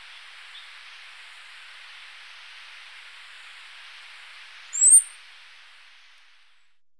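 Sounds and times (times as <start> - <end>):
faint background hiss: 0.0 - 6.8
Orange-breasted Fruiteater call recorded in Ecuador: 4.7 - 5.2.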